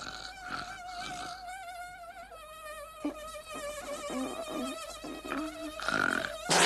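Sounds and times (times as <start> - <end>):
mosquito whine: 0.6 - 6.5.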